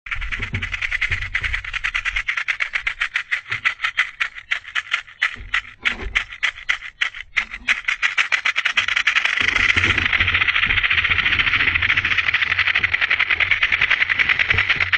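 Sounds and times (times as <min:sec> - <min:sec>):
rattlesnake rattling: 0:00.1 - 0:14.9.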